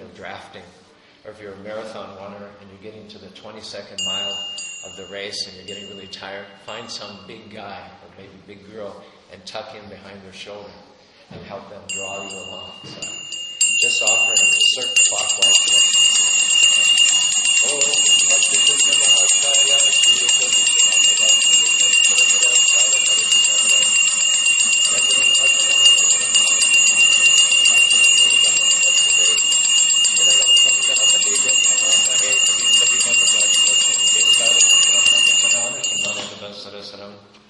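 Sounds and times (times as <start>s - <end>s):
speech: 0.2s - 13.2s, 13.8s - 15.8s, 17.6s - 18.1s
bright high-pitched bell ringing: 4.0s - 7.4s, 11.9s - 36.6s.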